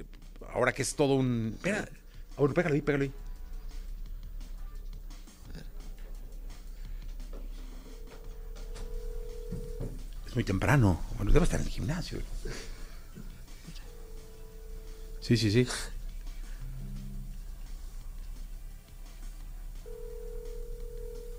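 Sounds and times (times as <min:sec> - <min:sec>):
constant hiss: 0:00.0 - 0:21.3
speech: 0:00.6 - 0:03.2, 0:10.4 - 0:12.7, 0:15.2 - 0:16.0
electronic ringback tone on an outgoing phone call: 0:07.6 - 0:10.1, 0:13.8 - 0:15.8, 0:19.8 - 0:21.3.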